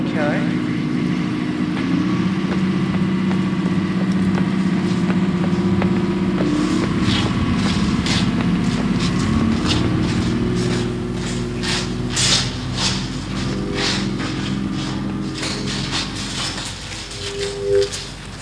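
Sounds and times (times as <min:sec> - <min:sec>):
large diesel generator running: 0:00.0 - 0:18.4.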